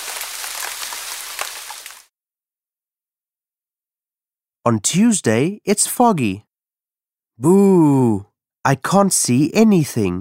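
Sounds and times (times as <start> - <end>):
steady rain falling: 0.0 - 2.1
speech: 4.6 - 6.5, 7.4 - 10.1.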